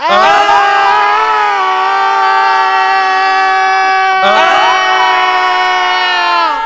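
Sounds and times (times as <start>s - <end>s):
several boys screaming in fright: 0.0s - 6.6s.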